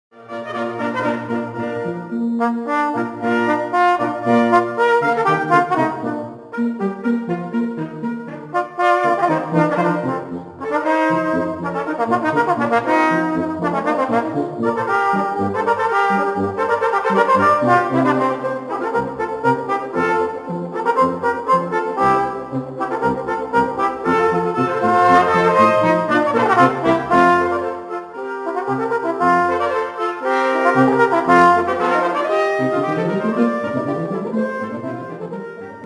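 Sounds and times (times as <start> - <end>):
alto trombone concerto: 0.2 - 35.8.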